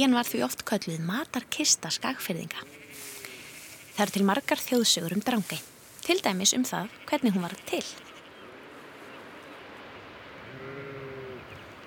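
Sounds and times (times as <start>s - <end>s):
speech: 0.0s - 2.8s, 4.0s - 8.1s
wind-like outdoor noise: 0.0s - 11.8s
sheep bleating: 2.4s - 5.0s, 6.7s - 8.4s, 10.5s - 11.4s.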